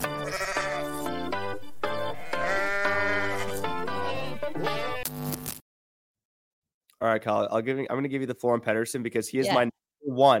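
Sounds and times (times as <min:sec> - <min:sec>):
goat bleating: 0:00.0 - 0:01.2, 0:02.0 - 0:05.0
speech: 0:07.0 - 0:10.3.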